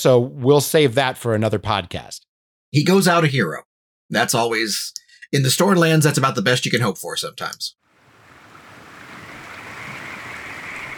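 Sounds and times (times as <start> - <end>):
speech: 0.0 - 7.8
faint windy hiss: 7.9 - 10.9
river water lapping against river ships docked at a town quay: 8.0 - 10.9.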